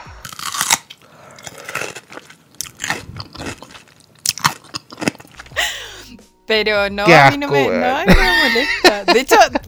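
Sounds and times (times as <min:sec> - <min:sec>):
crunching bites into a crunchy pickle: 0:00.0 - 0:05.5
juicy chewing with sharp crackly bursts: 0:00.1 - 0:05.6
speech: 0:06.5 - 0:09.6
laughter: 0:08.1 - 0:09.6.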